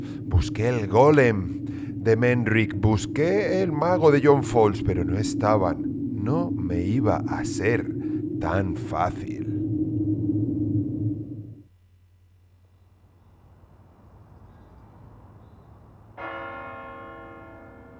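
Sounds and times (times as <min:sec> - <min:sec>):
low hum: 0:00.0 - 0:16.2
speech: 0:00.3 - 0:09.4
church bells tolling a death knell at night: 0:16.2 - 0:17.9.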